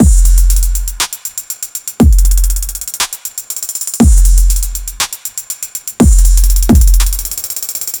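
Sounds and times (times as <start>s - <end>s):
tight trap electronic loop: 0.0s - 1.0s, 2.0s - 3.0s, 3.8s - 5.0s, 6.0s - 7.9s.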